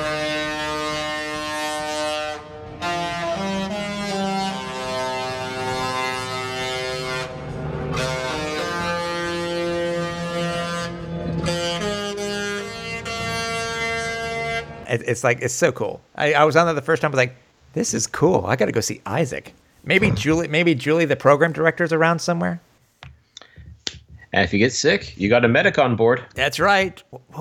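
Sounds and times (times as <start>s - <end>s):
cruise ship horn playing a TV show theme melody: 0.0s - 14.8s
speech: 14.9s - 22.7s, 24.4s - 27.3s.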